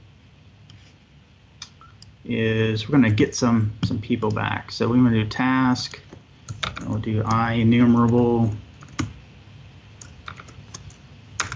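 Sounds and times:
speech: 2.2 - 6.1, 6.9 - 8.6
person typing code on a computer keyboard: 8.8 - 9.1, 10.0 - 11.5.

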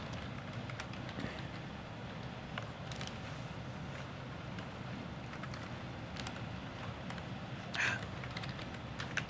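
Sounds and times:
computer keyboard typing: 0.0 - 1.6, 2.8 - 3.2, 4.5 - 9.2
steady hum: 0.0 - 9.2.

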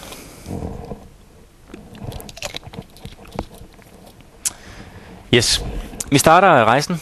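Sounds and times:
quiet sipping and swallowing of water: 1.6 - 6.1
soft mouth clicks: 1.7 - 4.6
speech: 5.3 - 7.0.

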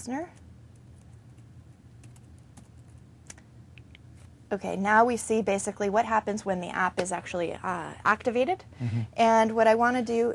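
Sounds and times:
speech: 0.0 - 0.4, 4.5 - 10.3
low hum: 0.0 - 10.3
typing on a new computer keyboard: 0.4 - 3.0.

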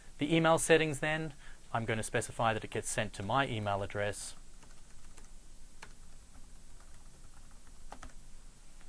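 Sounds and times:
soft steady hiss: 0.0 - 8.8
speech: 0.2 - 4.4
typing on a computer keyboard: 4.6 - 8.2.

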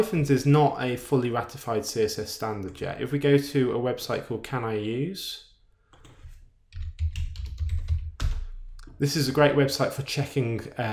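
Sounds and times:
speech: 0.0 - 5.5, 9.0 - 10.9
typing on a computer keyboard: 6.0 - 8.4.

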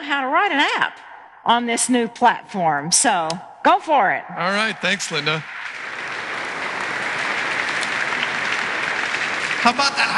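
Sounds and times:
speech: 0.1 - 5.6, 9.6 - 10.1
audience applause for a software demo: 4.6 - 10.1.

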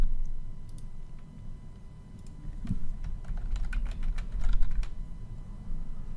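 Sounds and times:
low hum: 0.0 - 6.1
typing on a computer keyboard: 3.0 - 5.0.

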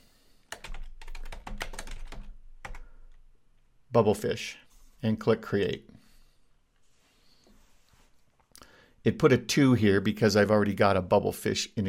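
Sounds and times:
rapid typing on a computer keyboard: 0.5 - 3.2
speech: 3.9 - 6.0, 9.0 - 11.8.

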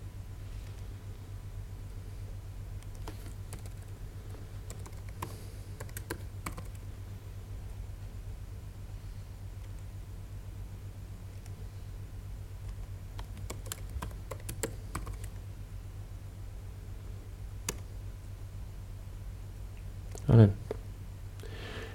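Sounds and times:
steady low droning hum: 0.0 - 21.9
typing on a computer keyboard: 2.8 - 3.9, 4.6 - 6.8, 12.7 - 15.4, 17.6 - 17.9.

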